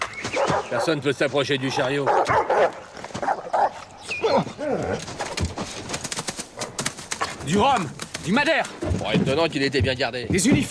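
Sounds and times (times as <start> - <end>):
several dogs barking and yipping: 0.0 - 5.4
speech: 0.6 - 2.9, 7.5 - 10.6.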